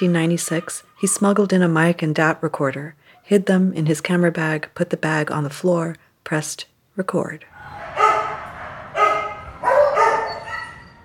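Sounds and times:
dogs barking in cages at an animal shelter: 0:00.0 - 0:01.1, 0:07.5 - 0:11.0
speech: 0:00.0 - 0:07.9.

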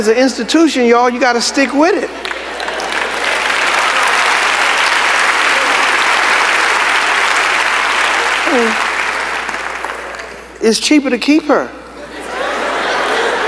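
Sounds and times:
speech: 0:00.0 - 0:02.3, 0:10.6 - 0:11.8
laughter: 0:01.4 - 0:10.3, 0:11.9 - 0:13.4
large audience applauding: 0:02.1 - 0:10.6.

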